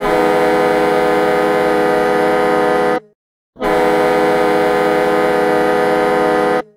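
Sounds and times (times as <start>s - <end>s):
hockey goal horn in Detroit: 0.0s - 6.7s.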